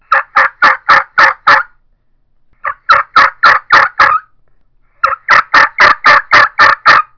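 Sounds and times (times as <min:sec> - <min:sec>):
stingray mouth call turkey yelps: 0:00.0 - 0:01.7, 0:02.6 - 0:04.4, 0:05.0 - 0:07.1.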